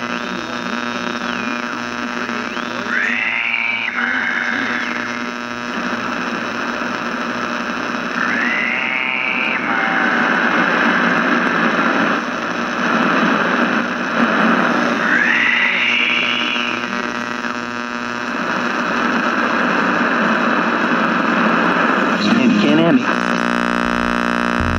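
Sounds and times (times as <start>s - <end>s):
radio static hissing and crackling from a speaker: 0.0s - 24.7s
low electrical hum: 21.9s - 24.7s
warbling radio tuning whines: 23.5s - 24.7s.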